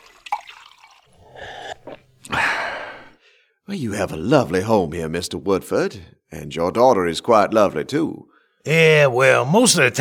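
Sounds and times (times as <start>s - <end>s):
drinks poured from a crystal decanter: 0.0s - 2.1s
speech: 3.7s - 9.9s.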